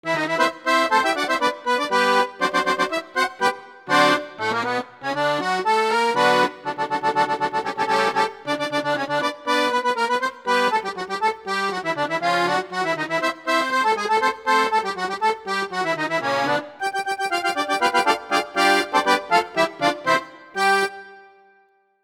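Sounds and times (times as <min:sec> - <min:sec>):
Alpine folk music with Styrian button accordion: 0:00.0 - 0:21.7.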